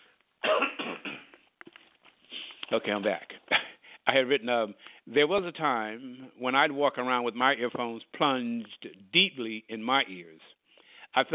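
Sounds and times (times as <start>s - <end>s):
person coughing: 0.4s - 1.3s
speech: 2.7s - 3.3s, 4.1s - 11.3s.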